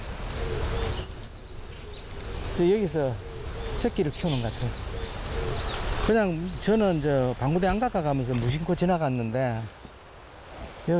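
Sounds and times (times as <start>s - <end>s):
Oriental dollarbird calling in a forest valley: 0.0s - 10.9s
wind in a forest valley: 0.0s - 10.9s
speech: 2.6s - 4.8s, 6.1s - 9.8s.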